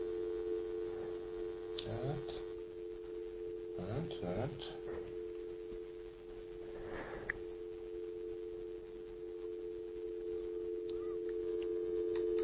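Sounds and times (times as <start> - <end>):
telephone line tone on a phone not working: 0.0 - 12.4
speech: 3.9 - 5.2
breathy rustle: 6.5 - 7.5.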